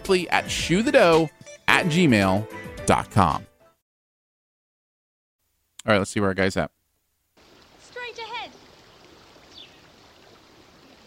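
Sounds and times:
speech: 0:00.1 - 0:03.5, 0:05.8 - 0:06.8
flowing river water: 0:07.4 - 0:11.0.

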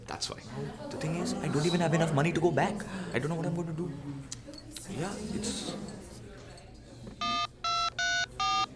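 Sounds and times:
speech: 0:00.1 - 0:06.0
old telephone being dialed with electronic tones: 0:07.2 - 0:08.7.

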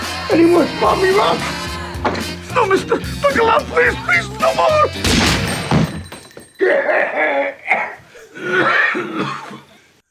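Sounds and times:
speech: 0:00.3 - 0:05.6, 0:06.6 - 0:09.4
person coughing harshly in an acted fit: 0:06.6 - 0:09.8.

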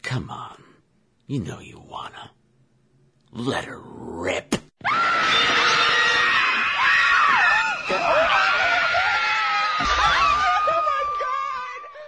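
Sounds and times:
speech: 0:00.1 - 0:00.6, 0:01.3 - 0:02.4, 0:03.3 - 0:04.6
several voices shrieking horror-film style screams: 0:04.8 - 0:12.0.

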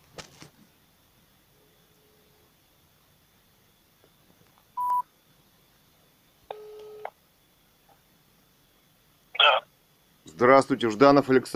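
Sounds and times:
touch-tone beeps of a phone being dialed: 0:04.8 - 0:05.0
speech: 0:10.4 - 0:11.5.

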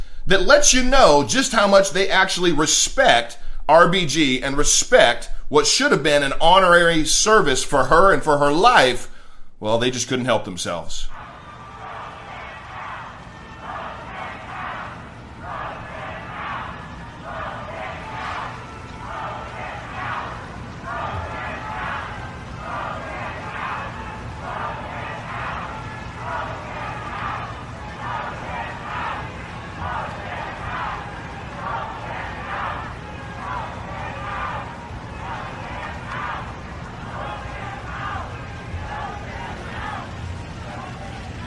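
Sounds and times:
speech: 0:00.3 - 0:11.1
large crowd of attendees at a memorial service chanting: 0:11.1 - 0:41.4.

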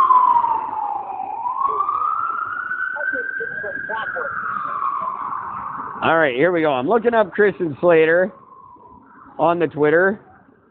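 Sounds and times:
ambulance siren wailing as it goes past: 0:00.0 - 0:10.6
speech: 0:06.0 - 0:08.4, 0:09.4 - 0:10.3.

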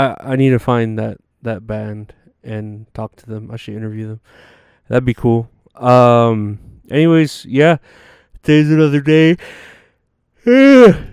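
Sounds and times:
speech: 0:00.0 - 0:09.7, 0:10.4 - 0:11.1
person yawning: 0:10.4 - 0:11.1.

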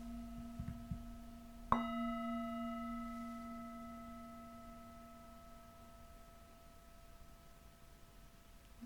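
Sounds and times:
singing bowl struck to end the practice: 0:00.0 - 0:08.6.

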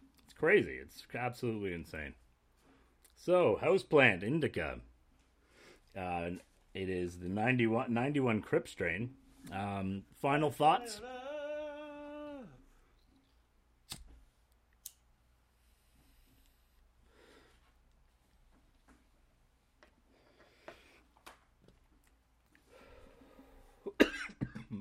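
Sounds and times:
speech: 0:00.4 - 0:02.2, 0:03.2 - 0:04.9, 0:06.0 - 0:11.2
quiet breathing: 0:02.5 - 0:03.0, 0:05.2 - 0:06.0, 0:15.4 - 0:18.0, 0:20.0 - 0:21.2, 0:22.5 - 0:23.9
person coughing: 0:23.8 - 0:24.7.

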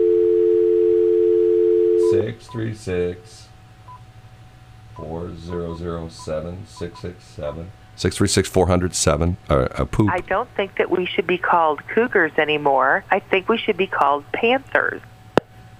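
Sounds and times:
telephone dial tone: 0:00.0 - 0:02.0
speech: 0:02.4 - 0:03.5, 0:05.0 - 0:15.1.

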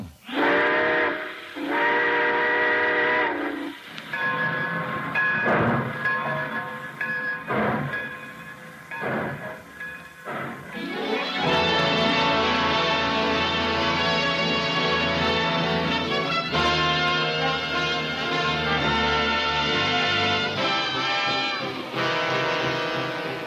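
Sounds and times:
train whistle blast: 0:00.3 - 0:05.3, 0:10.3 - 0:23.4
train chugging and clanking of cars gathering speed: 0:00.4 - 0:23.4.

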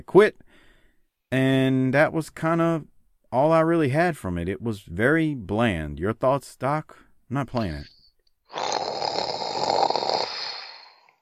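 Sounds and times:
speech: 0:00.0 - 0:00.4, 0:01.3 - 0:08.0
person making a rattling snoring sound: 0:08.5 - 0:11.2.

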